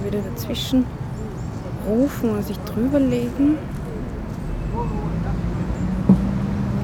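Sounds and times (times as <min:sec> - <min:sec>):
faint voice-like murmurs: 0:00.0 - 0:06.8
road traffic going by: 0:00.0 - 0:06.8
speech: 0:00.1 - 0:01.1, 0:01.8 - 0:03.8
knock: 0:06.1 - 0:06.3.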